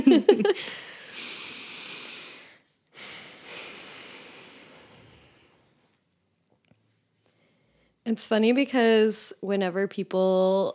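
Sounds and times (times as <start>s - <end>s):
speech: 0.0s - 0.8s, 8.1s - 10.7s
deep breath in: 0.6s - 5.7s
soft airy breath: 0.6s - 5.9s, 7.2s - 8.0s.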